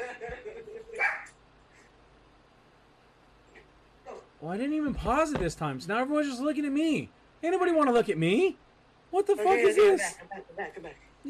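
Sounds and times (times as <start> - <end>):
single short dog bark: 1.0 - 1.3
speech: 4.4 - 11.2.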